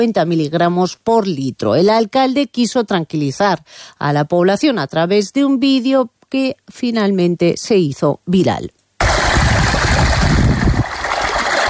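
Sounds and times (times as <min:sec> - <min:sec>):
speech: 0:00.0 - 0:08.8
running water pouring steadily: 0:09.0 - 0:11.6.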